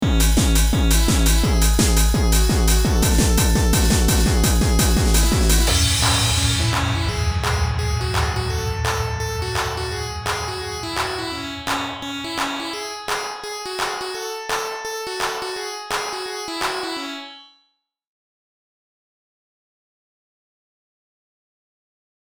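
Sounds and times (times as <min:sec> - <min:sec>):
trance music: 0:00.0 - 0:17.3.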